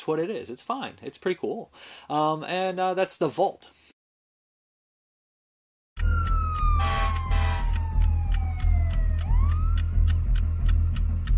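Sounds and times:
speech: 0.0s - 3.9s
emergency vehicle siren wailing: 6.0s - 10.4s
sharp rhythmic clicks: 6.0s - 11.3s.

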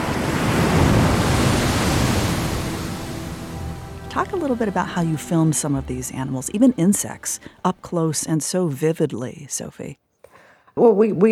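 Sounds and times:
ocean surf breaking on a beach in Loango National Park: 0.0s - 8.5s
speech: 4.3s - 10.0s, 10.8s - 11.2s.

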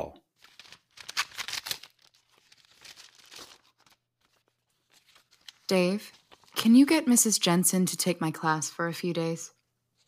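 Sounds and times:
envelope of documents being torn open: 0.4s - 6.6s
paper rustling and handling: 0.4s - 6.6s
speech: 5.7s - 9.6s.

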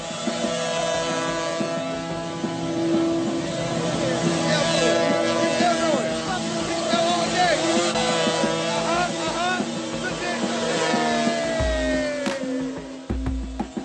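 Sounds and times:
motorcycle engine revving hard while doing donuts: 0.0s - 13.8s
heavy low thumps: 11.6s - 12.3s, 13.1s - 13.8s.

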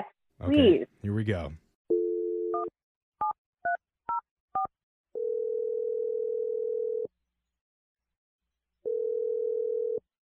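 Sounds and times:
speech: 0.4s - 1.6s
telephone dial tone: 1.9s - 2.7s, 5.2s - 7.1s, 8.8s - 10.2s
long flat telephone ringing tones: 5.2s - 7.1s, 8.9s - 10.0s.

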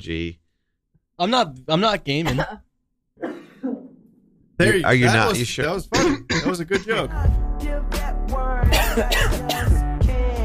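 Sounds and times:
speech: 0.0s - 0.4s, 1.2s - 3.3s, 4.6s - 9.8s
harsh coughing: 2.2s - 2.6s, 3.2s - 3.8s, 5.9s - 7.2s, 8.7s - 9.8s.

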